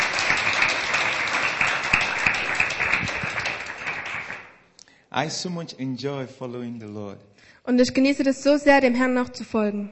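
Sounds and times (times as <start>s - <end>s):
audience clapping in church: 0.0s - 4.7s
speech: 5.2s - 9.9s.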